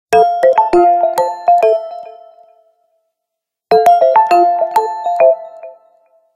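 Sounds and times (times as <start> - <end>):
phone ringtone: 0.2 - 2.4, 3.7 - 6.0.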